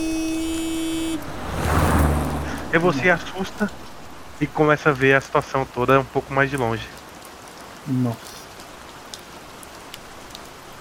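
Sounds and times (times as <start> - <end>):
car engine and tire noise passing by in darkness: 0.0 - 5.0
speech: 2.7 - 3.8, 4.4 - 7.0, 7.9 - 8.3.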